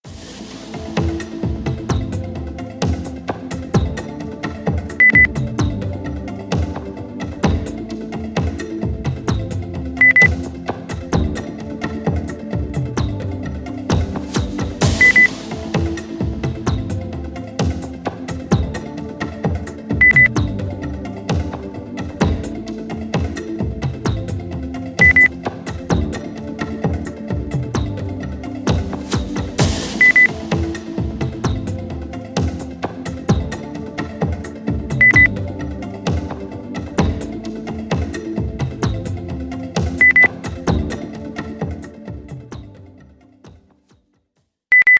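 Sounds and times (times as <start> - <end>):
percussion: 0.0 - 44.9
beep: 5.0 - 5.3, 10.0 - 10.3, 15.0 - 15.3, 20.0 - 20.3, 25.0 - 25.3, 30.0 - 30.3, 35.0 - 35.3, 40.0 - 40.3, 44.7 - 44.9.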